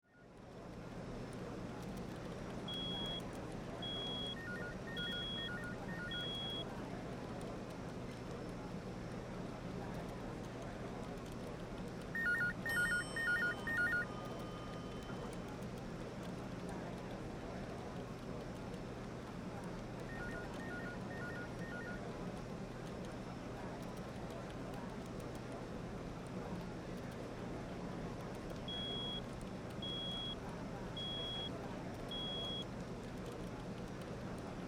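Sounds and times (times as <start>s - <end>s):
light office walla: 0.2s - 34.6s
office phones ringing: 3.8s - 6.6s, 12.2s - 15.4s, 20.1s - 22.0s
elevator bell in a building: 12.2s - 15.3s.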